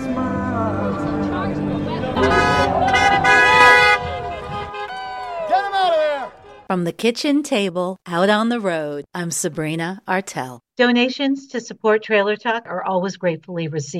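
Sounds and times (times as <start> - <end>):
crowd cheering and babbling: 0.2 - 6.7
steady traffic rumble: 2.1 - 6.7
car horns honking on Western Avenue in Albany, New York: 2.2 - 6.7
speech: 6.7 - 13.9.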